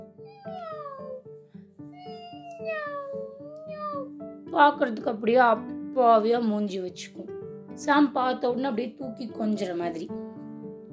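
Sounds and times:
cat meowing: 0.2 - 1.2, 2.0 - 4.2
speech: 4.5 - 7.2, 7.8 - 10.2.

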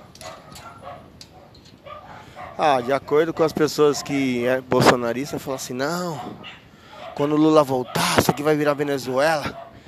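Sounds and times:
dogs barking at a house: 0.0 - 4.6, 5.2 - 9.8
dogs whimpering and yipping at a house: 0.2 - 2.8, 6.1 - 8.1
speech: 2.6 - 6.6, 7.2 - 9.6.

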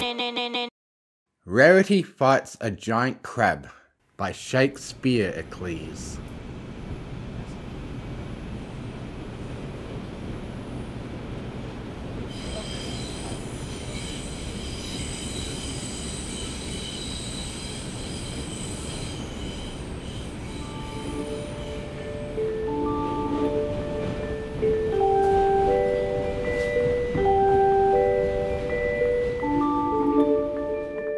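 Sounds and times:
speech: 0.1 - 0.7, 1.4 - 6.4
train rumbling along railway tracks: 5.7 - 31.0
high sustained train wheel squeals: 12.3 - 22.0.

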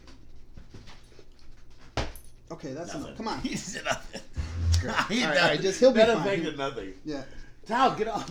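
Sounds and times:
dog sniffing and panting: 0.0 - 2.5
speech: 2.5 - 8.3
laughter: 2.9 - 7.0.

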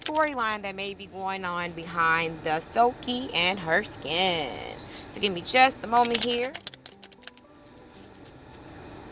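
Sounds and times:
speech: 0.1 - 6.7
tarot cards being shuffled: 6.0 - 8.7.

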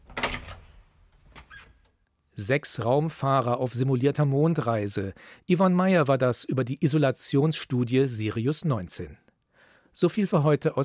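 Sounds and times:
door clunk: 0.0 - 1.5
door to an adjoining room opening with scraping rattle: 0.0 - 1.9
faint door squeak as it settles: 1.4 - 1.9
speech: 2.4 - 9.3, 10.0 - 10.8.

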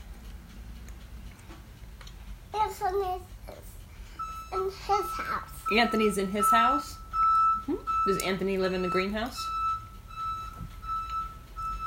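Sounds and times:
faint outdoor noise: 0.0 - 11.8
low truck engine rumble: 0.0 - 11.8
speech: 2.7 - 3.7, 4.5 - 7.0, 7.7 - 9.6
truck reversing alarm beeping: 4.2 - 11.8.

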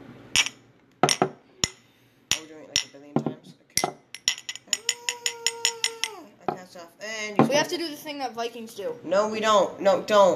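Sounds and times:
tea cups clinking together in a toast: 0.4 - 6.2
speech: 7.5 - 10.3.

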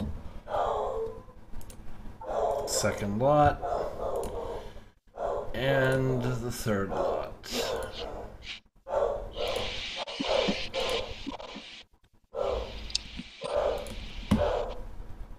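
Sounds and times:
dog barking: 0.5 - 1.3, 2.2 - 2.7, 3.6 - 4.6, 5.2 - 5.5, 6.9 - 11.1, 12.4 - 12.8, 13.4 - 14.8
speech: 2.8 - 3.7, 5.6 - 7.6.

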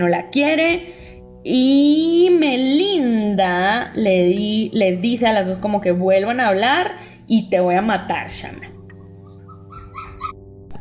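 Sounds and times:
speech: 0.0 - 8.7
puppies yelping whining and howling: 8.9 - 10.4.

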